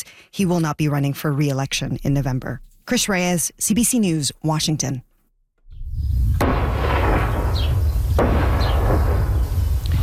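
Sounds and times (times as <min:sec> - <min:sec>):
speech: 0:00.4 - 0:05.1
explosions from airstrikes: 0:05.8 - 0:10.0
sharp blasts: 0:06.1 - 0:09.8.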